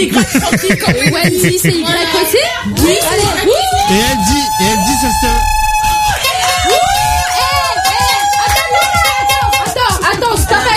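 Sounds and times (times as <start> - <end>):
laughter: 0.0 - 4.0
speech: 0.0 - 4.6
several people shouting in a studio: 2.1 - 10.7
excited whoops: 3.5 - 9.8.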